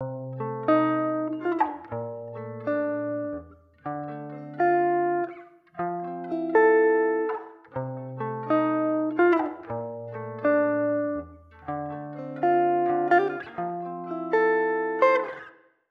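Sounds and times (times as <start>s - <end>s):
guitar with room reverb: 0.0s - 15.8s.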